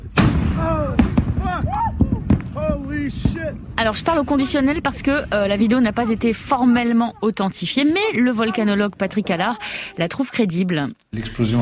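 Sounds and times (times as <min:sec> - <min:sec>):
deep distant explosion booms from a volcanic eruption: 0:00.0 - 0:07.2
people's voices: 0:00.6 - 0:11.6
speech: 0:03.1 - 0:11.6.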